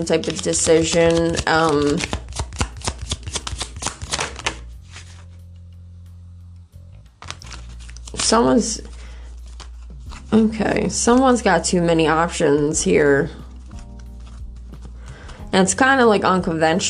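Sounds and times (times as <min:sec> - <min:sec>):
speech: 0:00.0 - 0:02.2, 0:08.3 - 0:08.9, 0:10.3 - 0:13.4, 0:15.6 - 0:16.8
tarot cards being riffled and shuffled: 0:00.0 - 0:05.7, 0:07.1 - 0:12.2, 0:13.2 - 0:15.5
low steady hum: 0:00.0 - 0:16.8.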